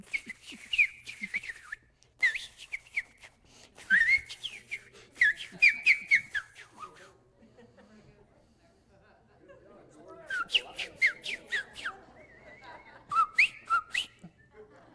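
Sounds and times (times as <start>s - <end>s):
person whistling a tune in worship: 0.0s - 7.0s, 10.3s - 14.5s
laughter: 5.2s - 14.9s.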